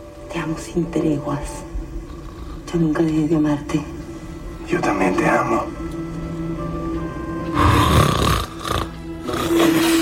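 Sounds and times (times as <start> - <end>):
steady low hum: 0.0 - 9.6
speech: 0.4 - 1.8, 2.7 - 4.0, 4.7 - 6.0
loud rough snore with raspy inhale: 7.5 - 10.0.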